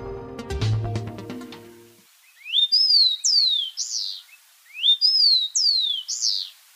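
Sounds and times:
music: 0.0 - 2.0
rufous-collared sparrow singing slurred whistles: 2.2 - 6.6.

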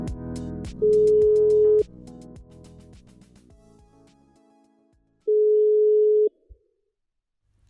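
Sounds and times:
telephone ringback tone: 0.9 - 1.8, 5.3 - 6.3.

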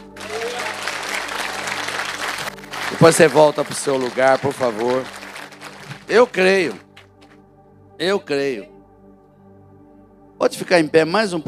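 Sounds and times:
room full of people applauding: 0.0 - 7.4
speech: 2.9 - 5.2, 6.1 - 6.8, 8.0 - 8.7, 10.4 - 11.4.

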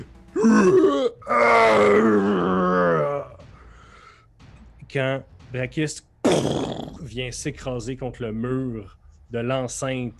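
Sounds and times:
speech: 0.0 - 0.8, 4.9 - 10.1
voice imitating a loud anguished cry: 0.4 - 3.3.

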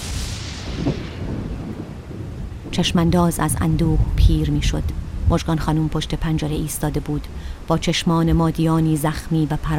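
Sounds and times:
deep low thunder rumble: 0.0 - 6.2
steady rain: 0.0 - 9.7
speech: 2.8 - 9.7.

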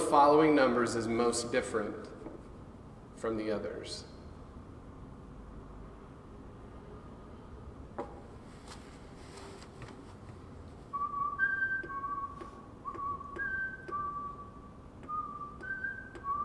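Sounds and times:
speech: 0.1 - 2.2, 3.2 - 4.1
person whistling a simple tune: 10.9 - 16.4.

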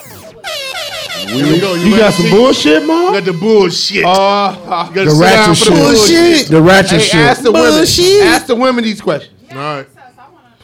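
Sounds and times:
brassy air horn sound effect blaring: 0.0 - 4.3
speech: 1.2 - 9.9.

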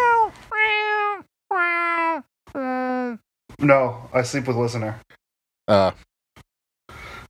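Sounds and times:
cat meowing: 0.0 - 3.2
speech: 3.6 - 5.1, 5.7 - 6.1.

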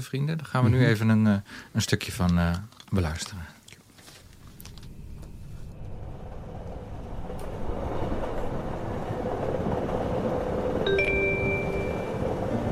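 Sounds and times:
speech: 0.0 - 3.6
train rolling along the tracks toward Heerlen station in the Netherlands: 4.4 - 12.7.

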